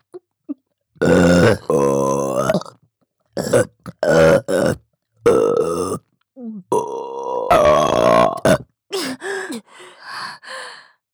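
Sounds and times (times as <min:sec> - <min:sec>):
loud drawn-out burping: 0:01.0 - 0:02.8, 0:03.4 - 0:06.1, 0:06.7 - 0:08.7
breathy sighs: 0:09.0 - 0:11.0.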